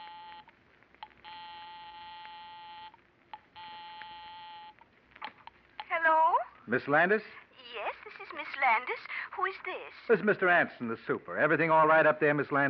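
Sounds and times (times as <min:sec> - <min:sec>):
house telephone buzzing ring tones: 0:00.0 - 0:04.9
speech: 0:06.7 - 0:07.4, 0:08.6 - 0:12.6.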